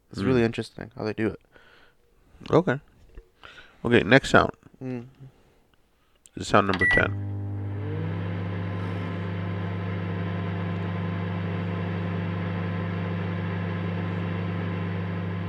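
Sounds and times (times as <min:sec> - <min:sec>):
speech: 0:00.1 - 0:01.5, 0:02.4 - 0:05.4, 0:06.4 - 0:07.4
microwave oven running with low hum and whirring: 0:06.8 - 0:15.4.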